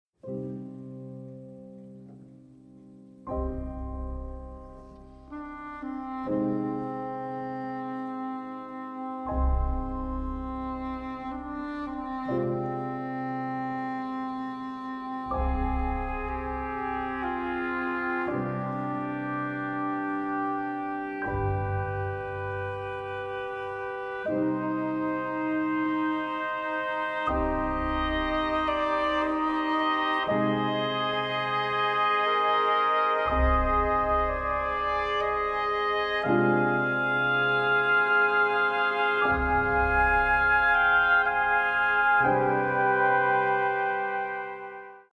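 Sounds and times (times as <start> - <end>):
piano: 0.2 - 45.1.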